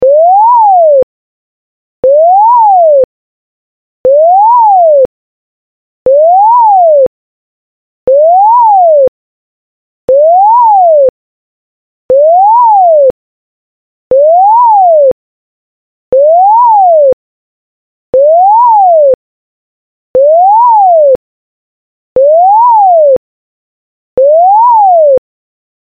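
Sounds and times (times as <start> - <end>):
gated siren: 0.0 - 1.0, 2.0 - 3.0, 4.1 - 5.0, 6.1 - 7.1, 8.1 - 9.1, 10.1 - 11.1, 12.1 - 13.1, 14.1 - 15.1, 16.1 - 17.1, 18.2 - 19.2, 20.2 - 21.2, 22.2 - 23.2, 24.2 - 25.2.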